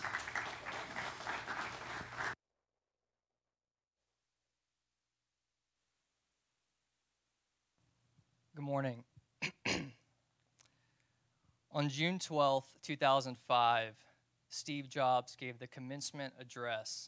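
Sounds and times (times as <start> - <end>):
large audience applause welcoming a speaker: 0.0 - 2.4
speech: 8.7 - 9.0, 11.8 - 17.0.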